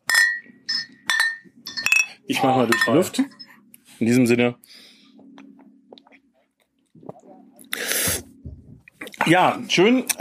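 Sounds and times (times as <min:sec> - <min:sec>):
glasses clinking in a toast: 0:00.0 - 0:03.5
speech: 0:02.3 - 0:03.4, 0:04.0 - 0:04.9, 0:09.3 - 0:10.1.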